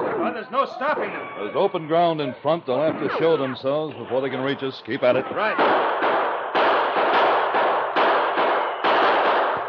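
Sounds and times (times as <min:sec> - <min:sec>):
speech: 0:00.2 - 0:06.0
gunfire bursts in a gunfight across open ground in the Yukon: 0:05.5 - 0:09.6
bullets ripping into a wooden barrier: 0:05.6 - 0:09.6.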